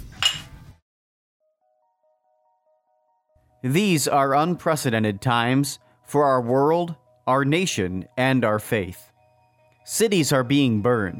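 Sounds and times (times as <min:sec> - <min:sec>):
glasses clinking in a toast: 0:00.2 - 0:00.5
speech: 0:03.6 - 0:09.1, 0:09.8 - 0:11.1.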